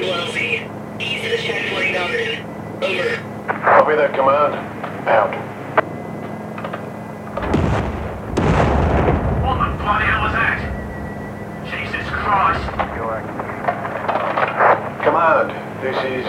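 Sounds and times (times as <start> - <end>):
voices talking: 0.0 - 5.6, 9.4 - 10.7, 11.6 - 13.5, 15.0 - 16.2
speech: 2.0 - 5.5, 12.3 - 13.5, 15.1 - 16.2
distant explosion booming with a long low rumble: 7.3 - 14.2.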